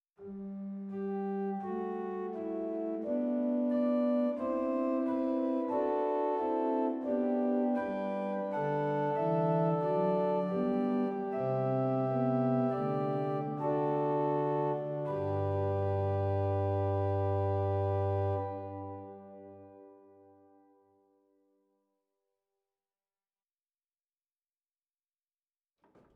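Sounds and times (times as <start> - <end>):
organ playing Bovenpositief Praestant 8 stop in Zwolle: 0.4 - 20.0.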